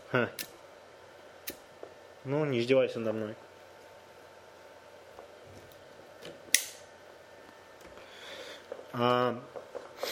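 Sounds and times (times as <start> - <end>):
speech: 0.1 - 0.5, 2.3 - 3.5, 9.0 - 9.6
lighter flicked without igniting: 1.4 - 1.6, 6.5 - 6.8.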